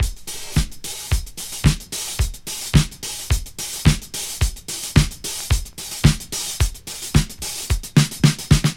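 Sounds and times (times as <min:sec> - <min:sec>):
110 bpm drum beat in D sharp with kick tuned to D#: 0:00.0 - 0:08.7.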